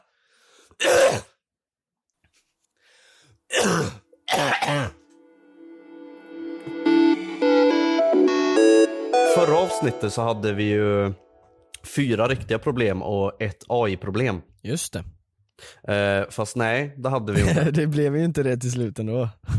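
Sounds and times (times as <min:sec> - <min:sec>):
person coughing hard and harshly: 0:00.8 - 0:01.4, 0:03.5 - 0:05.0
steady tonal melody: 0:05.2 - 0:11.6
speech: 0:09.8 - 0:11.2, 0:11.9 - 0:19.5
laughter: 0:17.3 - 0:18.0.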